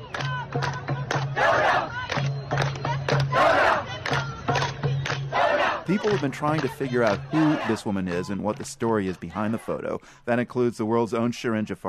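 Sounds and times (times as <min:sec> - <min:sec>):
large protest crowd chanting: 0:00.0 - 0:09.9
speech: 0:05.9 - 0:11.8.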